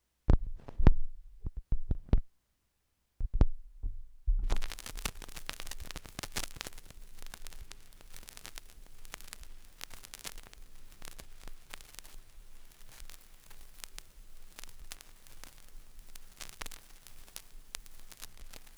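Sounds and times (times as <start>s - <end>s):
needle dropping on a record: 0.3s - 2.3s, 3.2s - 18.7s
vinyl record crackle: 4.4s - 18.7s.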